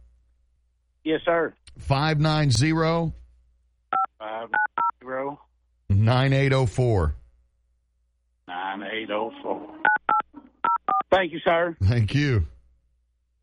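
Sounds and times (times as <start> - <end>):
speech: 1.1 - 3.2, 4.2 - 7.2, 8.5 - 9.7, 11.1 - 12.5
telephone keypad dialing tones: 4.0 - 4.9, 9.9 - 11.0.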